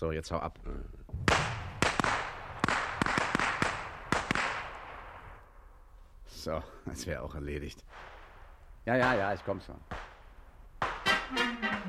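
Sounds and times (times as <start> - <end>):
speech: 0.0 - 1.4, 6.4 - 8.1, 8.8 - 10.0
pistol shots: 1.2 - 5.2, 9.0 - 11.1.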